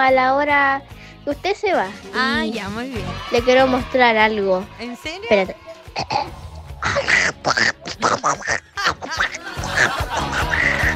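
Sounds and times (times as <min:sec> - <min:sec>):
speech: 0:00.0 - 0:10.4
person imitating a quacking cartoon duck: 0:06.0 - 0:10.9
snickering laughter: 0:06.8 - 0:10.9.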